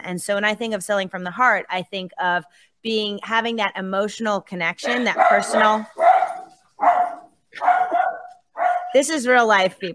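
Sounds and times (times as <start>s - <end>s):
speech: 0.0s - 6.0s, 8.9s - 9.9s
dogs barking: 4.8s - 9.0s.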